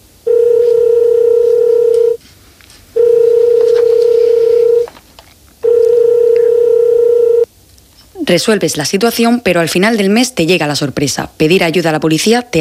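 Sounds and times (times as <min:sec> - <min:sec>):
telephone line tone in long steady electronic beeps: 0:00.2 - 0:02.2, 0:03.0 - 0:04.9, 0:05.6 - 0:07.5
speech: 0:08.3 - 0:12.5.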